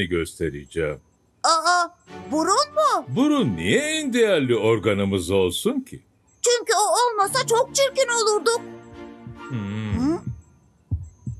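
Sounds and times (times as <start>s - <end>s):
speech: 0.0s - 8.8s, 9.5s - 9.9s
human heartbeat: 9.2s - 11.3s
brief voiced vocal sound: 9.4s - 10.3s.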